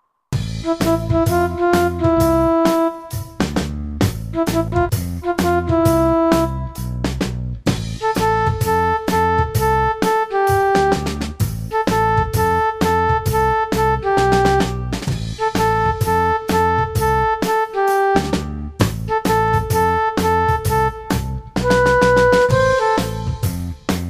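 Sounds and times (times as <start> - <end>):
keyboard section playing: 0.4 - 7.0, 7.9 - 23.9.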